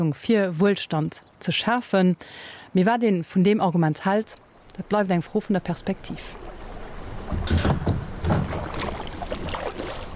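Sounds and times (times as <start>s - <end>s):
speech: 0.0s - 6.5s, 7.3s - 8.6s
wind: 0.0s - 10.1s
steady low wash of water: 5.7s - 10.1s
kayak paddle strokes splashing on water near a pontoon at a mill: 6.1s - 10.1s.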